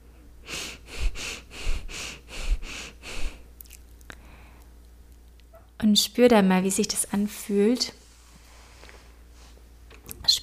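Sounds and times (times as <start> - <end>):
shallow rapid breathing in and out: 0.4 - 3.5, 4.1 - 4.7
speech: 5.8 - 8.0.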